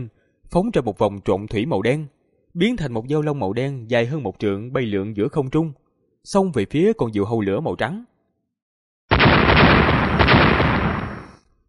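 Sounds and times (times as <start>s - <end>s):
speech: 0.0s - 8.1s
explosion sound effect in midair: 9.1s - 11.4s.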